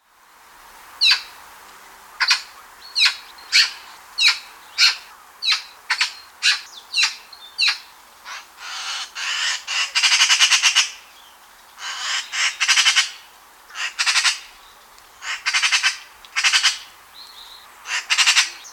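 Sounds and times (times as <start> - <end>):
magpie making various calls: 2.2 - 11.0, 11.8 - 14.5, 15.2 - 16.9, 17.8 - 18.7.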